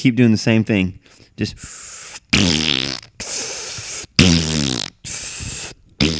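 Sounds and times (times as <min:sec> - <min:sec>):
speech: 0:00.0 - 0:03.4, 0:04.2 - 0:04.9
farts: 0:02.3 - 0:06.1.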